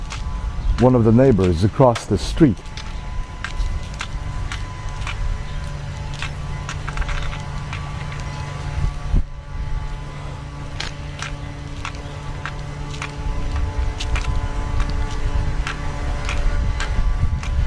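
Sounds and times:
gusty wind rumble: 0:00.0 - 0:17.6
leaf blower droning across the street: 0:00.0 - 0:17.6
speech: 0:00.8 - 0:02.8.

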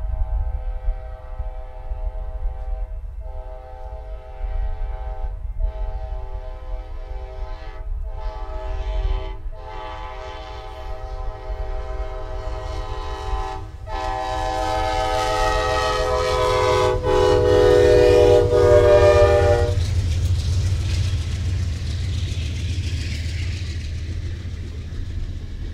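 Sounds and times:
locomotive train horn blasts: 0:00.0 - 0:20.0
low rolling rail rumble: 0:00.0 - 0:25.7.

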